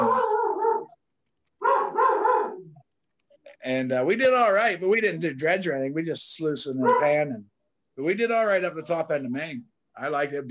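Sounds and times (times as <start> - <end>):
dog barking excitedly: 0.0 - 1.0, 1.6 - 2.8, 6.8 - 7.4
speech: 3.7 - 10.4.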